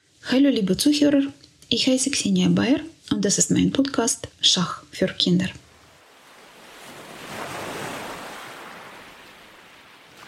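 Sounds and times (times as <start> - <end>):
speech: 0.2 - 5.6
ocean waves breaking on the beach: 5.6 - 10.2.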